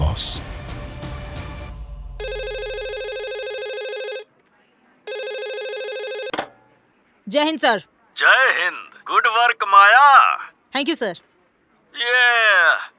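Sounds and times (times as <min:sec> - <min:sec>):
telephone ringing in long buzzy electronic bursts: 0:02.2 - 0:04.3, 0:05.1 - 0:06.8
sharp click: 0:06.3 - 0:06.7
speech: 0:07.3 - 0:11.3, 0:12.0 - 0:12.9.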